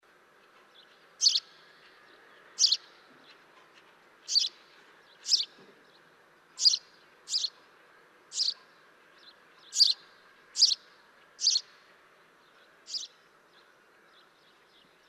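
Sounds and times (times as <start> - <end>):
house sparrow Passer domesticus chirping: 0.8 - 1.7, 2.4 - 3.0, 4.2 - 5.6, 6.6 - 7.6, 8.3 - 11.7, 12.5 - 15.0.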